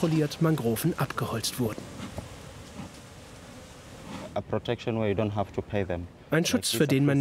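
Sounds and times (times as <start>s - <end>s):
speech: 0.0s - 2.0s, 4.4s - 7.2s
honeybees buzzing around beehives among mangrove trees in Lamu: 0.0s - 4.4s.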